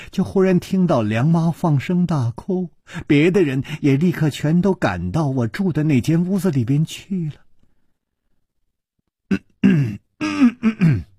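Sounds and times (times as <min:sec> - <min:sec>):
speech: 0:00.1 - 0:07.4, 0:09.3 - 0:11.1
man clearing throat and coughing: 0:09.3 - 0:11.1.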